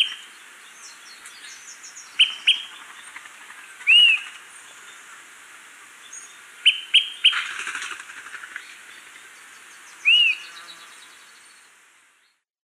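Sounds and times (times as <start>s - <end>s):
smoke-colored pewee calling in Ecuador: 2.2s - 2.7s, 3.8s - 4.3s, 6.6s - 7.5s, 10.0s - 10.8s.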